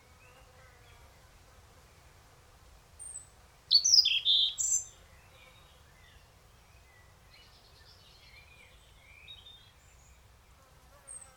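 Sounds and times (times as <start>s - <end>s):
European robin Erithacus rubecula song: 3.0s - 10.2s.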